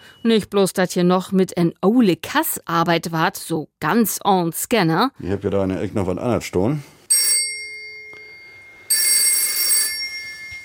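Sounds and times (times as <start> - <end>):
speech: 0.2 - 7.0
old telephone mechanical bell ringing: 7.0 - 10.6.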